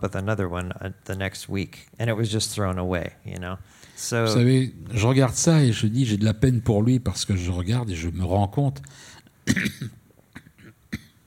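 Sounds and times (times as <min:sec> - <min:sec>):
speech: 0:00.0 - 0:10.0
man coughing: 0:09.4 - 0:11.2.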